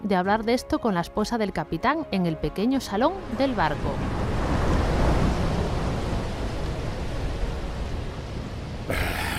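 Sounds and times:
speech: 0.1 - 4.3, 8.9 - 9.2
wind: 2.6 - 9.3
stormy sea waves: 2.7 - 9.3.

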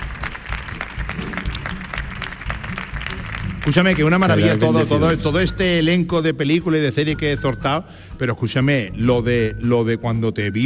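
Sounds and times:
studio audience applause: 0.0 - 4.9
speech: 3.7 - 10.6.

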